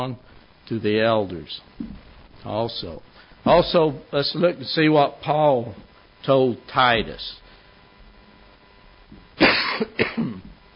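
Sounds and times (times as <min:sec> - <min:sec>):
speech: 0:00.0 - 0:07.4, 0:09.8 - 0:10.4
person coughing harshly: 0:09.4 - 0:10.5.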